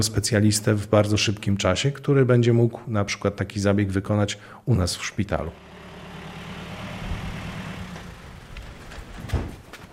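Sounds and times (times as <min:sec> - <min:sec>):
speech: 0:00.0 - 0:05.7
heavy military vehicle engine rumbling: 0:05.4 - 0:09.4.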